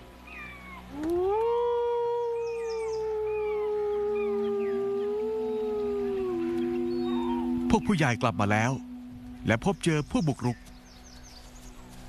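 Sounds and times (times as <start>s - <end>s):
coastal wolves howling in chorus: 0.4s - 9.4s
speech: 7.7s - 10.7s.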